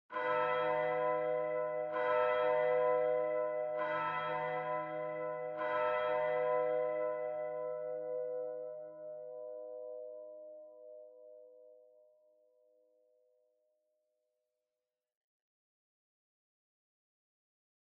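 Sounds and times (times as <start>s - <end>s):
distant low church bell ringing long: 0.1s - 13.6s.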